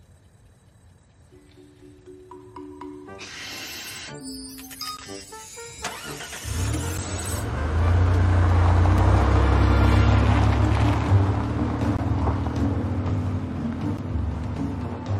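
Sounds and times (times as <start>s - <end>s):
electronic beeps and tones: 3.0s - 7.4s
car engine starting and idling: 5.8s - 15.1s.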